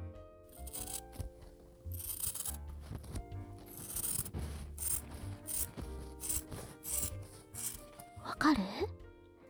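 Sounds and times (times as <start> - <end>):
scissors cutting through cloth: 0.5 - 8.2
speech: 8.4 - 9.0.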